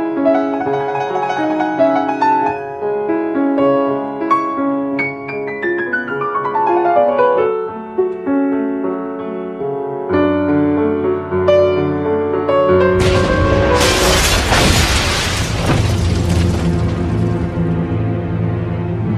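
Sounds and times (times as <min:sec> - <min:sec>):
piano playing slow sustained notes: 0:00.0 - 0:19.1
bomb explosion destroying a piano: 0:13.0 - 0:17.7
crashing debris from an explosion: 0:13.0 - 0:18.0.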